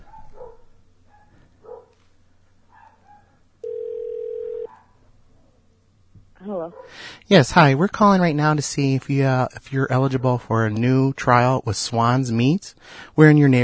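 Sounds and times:
dog barks and yips: 0:00.0 - 0:02.0, 0:02.7 - 0:03.4, 0:04.7 - 0:05.0, 0:06.7 - 0:07.0
low hum: 0:00.0 - 0:13.6
telephone ringback tone during a prank call: 0:03.6 - 0:04.7
speech: 0:06.7 - 0:13.6.

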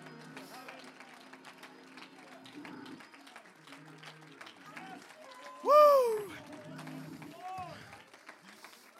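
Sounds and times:
audience clapping hands: 0:00.0 - 0:08.9
people calling out and shouting over the applause: 0:05.7 - 0:06.3.

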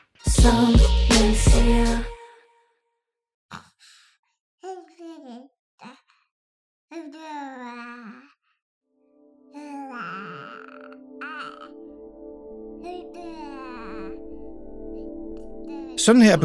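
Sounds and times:
speech: 0:00.4 - 0:01.0, 0:16.1 - 0:16.4
baby babbling and cooing: 0:04.7 - 0:06.2, 0:06.9 - 0:08.4, 0:09.5 - 0:11.7, 0:12.8 - 0:14.2, 0:15.7 - 0:16.0.

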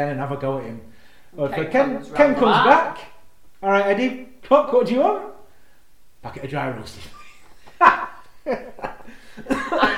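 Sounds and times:
speech: 0:00.0 - 0:05.3, 0:06.2 - 0:07.2, 0:08.4 - 0:08.8
person laughing helplessly: 0:07.1 - 0:09.9.

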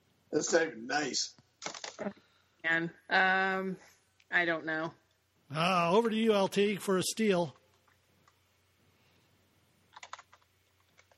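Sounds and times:
speech: 0:00.3 - 0:01.4, 0:02.0 - 0:07.6
typing on a computer keyboard: 0:09.9 - 0:11.1.

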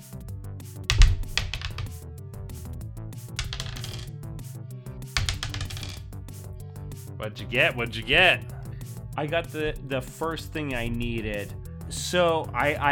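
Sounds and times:
dice rolling on a hard tabletop: 0:00.9 - 0:02.0, 0:03.4 - 0:04.1, 0:05.2 - 0:06.1
speech: 0:07.2 - 0:08.5, 0:09.2 - 0:12.9.

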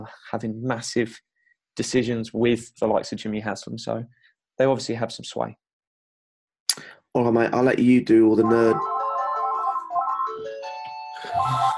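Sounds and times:
speech: 0:00.0 - 0:05.6, 0:06.7 - 0:08.9
phone ringing with a bright electronic ringtone melody: 0:08.4 - 0:11.7.

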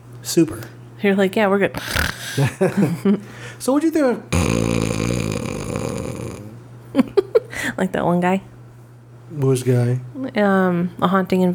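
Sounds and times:
speech: 0:00.2 - 0:05.1, 0:07.8 - 0:08.5, 0:09.3 - 0:11.5
person imitating loud snoring: 0:04.3 - 0:06.6.

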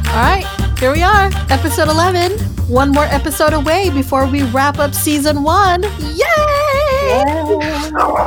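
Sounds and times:
speech: 0:00.2 - 0:06.4, 0:07.1 - 0:08.2
hyper dog whining, yipping and yelping: 0:07.0 - 0:08.2.

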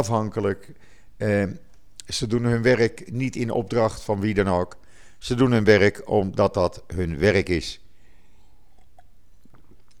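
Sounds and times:
speech: 0:00.0 - 0:07.8
person sipping water: 0:08.1 - 0:09.9
soft wet mouth and swallowing clicks: 0:08.5 - 0:09.9.

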